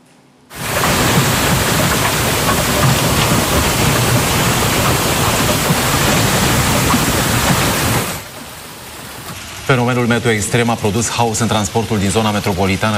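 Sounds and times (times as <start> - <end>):
golf-ball-sized hail pelting hard surfaces in a heavy hailstorm: 0.5 - 9.5
speech: 9.7 - 12.9.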